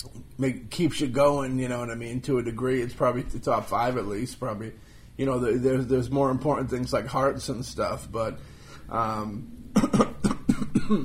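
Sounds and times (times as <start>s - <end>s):
speech: 0.4s - 10.1s, 10.9s - 11.0s
person coughing hard: 9.8s - 11.0s.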